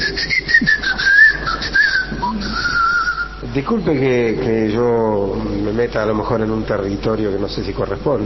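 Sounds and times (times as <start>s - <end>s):
person whistling a wavering tune as a signal call: 0.0s - 3.4s
speech: 3.6s - 8.2s.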